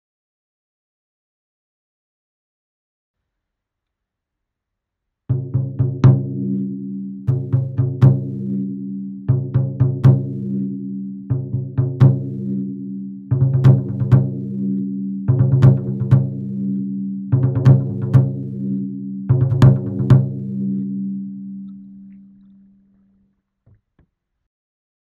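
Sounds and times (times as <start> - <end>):
taiko drums: 5.3 - 6.6, 7.3 - 8.7, 9.3 - 10.6, 11.3 - 12.7, 13.3 - 14.7, 15.3 - 16.7, 17.3 - 18.6, 19.3 - 20.7.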